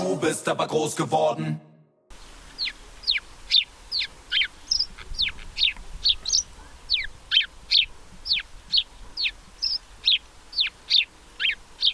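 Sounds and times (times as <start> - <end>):
speech: 0.1 - 1.7
house sparrow scolding chatter in bushes along a canal: 2.1 - 11.9.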